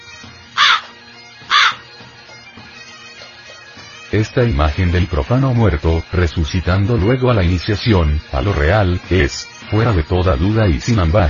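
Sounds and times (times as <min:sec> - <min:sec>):
crow cawing: 0:00.5 - 0:01.9
speech: 0:04.1 - 0:11.2.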